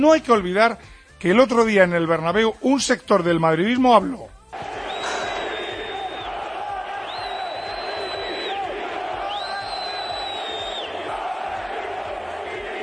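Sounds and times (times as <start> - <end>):
speech: 0.0 - 4.3
large crowd of football fans chanting at a stadium: 4.6 - 12.8
long sustained whistles: 4.7 - 11.0.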